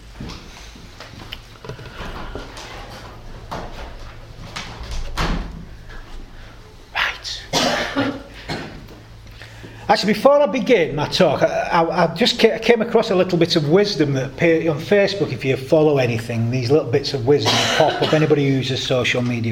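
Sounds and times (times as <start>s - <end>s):
door pushed shut with a solid thud: 4.6s - 5.7s
speech: 9.9s - 19.5s.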